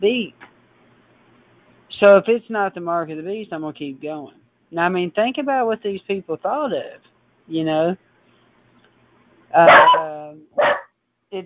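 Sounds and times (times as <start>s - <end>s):
speech: 0.0s - 0.4s, 2.0s - 8.1s, 9.5s - 10.7s
dog barking at a bird: 9.6s - 10.9s.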